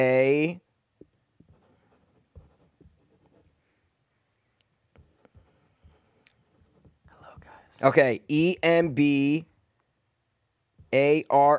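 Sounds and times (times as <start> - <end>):
speech: 0.0 - 0.6, 7.8 - 9.5, 10.9 - 11.5
pen drawing letters on paper: 1.4 - 3.6, 5.0 - 7.5.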